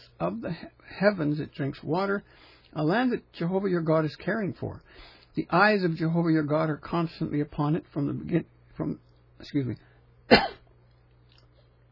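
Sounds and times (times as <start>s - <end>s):
speech: 0.2s - 10.6s
person clearing throat with coconut stuck in throat: 10.3s - 10.7s.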